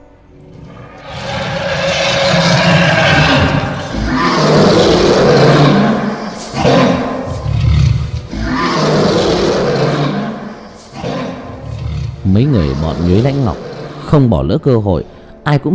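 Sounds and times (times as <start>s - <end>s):
dragon roaring sound effect from a fantasy battle scene: 0.5s - 14.4s
speech: 12.4s - 15.7s.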